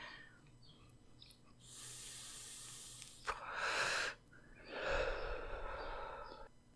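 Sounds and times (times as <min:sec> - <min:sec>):
breathy hissing exhales of smoke: 0:01.6 - 0:06.5
person inhaling smoke from a blunt: 0:01.6 - 0:06.5.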